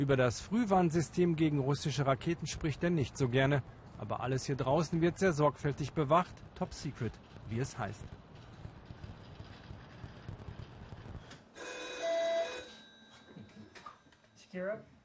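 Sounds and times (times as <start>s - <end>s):
speech: 0.0s - 8.2s, 14.6s - 15.0s
red telephone ringing with an electronic trill in a missile early-warning training centre: 11.6s - 14.3s.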